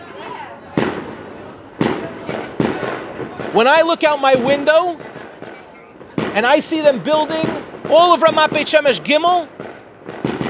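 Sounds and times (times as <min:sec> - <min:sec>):
low murmur: 0:00.0 - 0:10.4
Israeli firecrackers popping for Yom HaAtzmaut: 0:00.7 - 0:10.4
speech: 0:03.5 - 0:05.2, 0:06.4 - 0:09.6.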